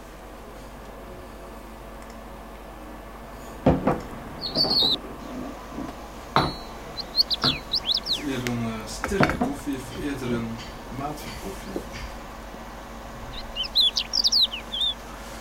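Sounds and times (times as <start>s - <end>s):
steady hiss: 2.6s - 15.3s
skylark singing in high twittering bursts: 4.4s - 5.0s, 6.2s - 9.0s, 11.6s - 15.1s.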